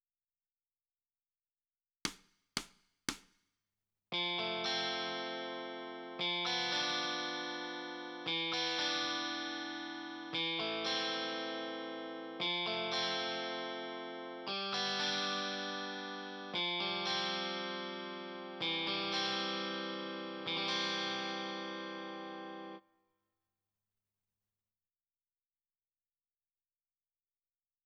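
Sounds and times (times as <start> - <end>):
guitar: 4.1 - 22.8.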